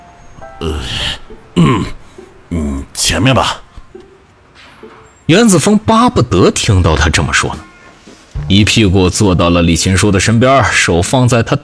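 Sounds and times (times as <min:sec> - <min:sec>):
speech: 0:00.4 - 0:02.0, 0:03.1 - 0:03.6, 0:05.3 - 0:07.6, 0:08.5 - 0:11.6
elderly man clearing his throat: 0:01.6 - 0:02.1.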